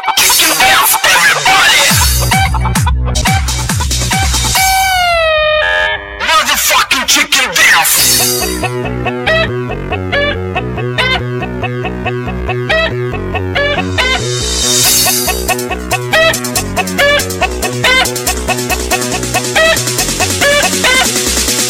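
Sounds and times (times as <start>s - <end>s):
novelty dance tune: 0.2s - 5.1s, 6.2s - 21.6s.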